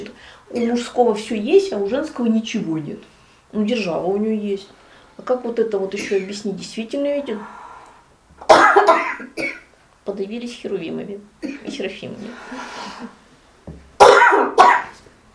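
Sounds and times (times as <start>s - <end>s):
faint breathing: 0.1s - 0.5s, 3.1s - 3.5s, 4.7s - 5.2s, 7.1s - 8.2s, 12.2s - 13.3s
speech: 0.1s - 7.6s, 10.1s - 13.2s
harsh cough: 6.0s - 6.2s, 8.5s - 9.7s, 11.4s - 11.8s, 14.0s - 14.9s.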